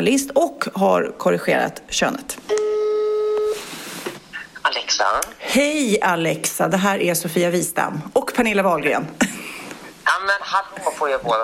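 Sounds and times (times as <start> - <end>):
speech: 0.0 - 2.7, 4.9 - 9.4, 10.1 - 11.4
ringback tone of an outgoing phone call: 2.5 - 3.6
soft phone line hiss: 2.5 - 4.1.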